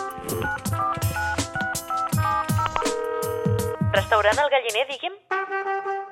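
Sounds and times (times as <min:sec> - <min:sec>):
telephone keypad tones dialing a restaurant's number: 0:00.2 - 0:03.8
speech: 0:00.3 - 0:01.1, 0:04.1 - 0:05.9.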